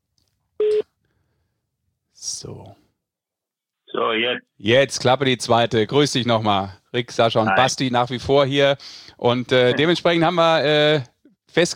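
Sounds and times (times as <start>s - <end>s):
telephone call tone while calling someone: 0.6s - 0.8s
speech: 2.4s - 2.8s, 4.0s - 11.7s.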